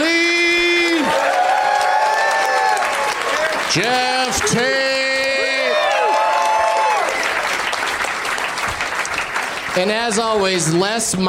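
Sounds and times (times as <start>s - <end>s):
audience cheers and whoops: 0.0s - 7.6s
audience applause for performers at the end of a show: 0.0s - 10.8s
speech: 3.7s - 5.0s, 9.8s - 11.2s.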